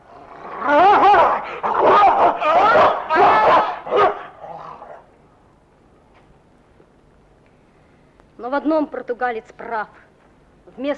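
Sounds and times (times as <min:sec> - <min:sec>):
dog barking: 0:01.0 - 0:04.7
speech: 0:08.5 - 0:10.1, 0:10.8 - 0:10.9.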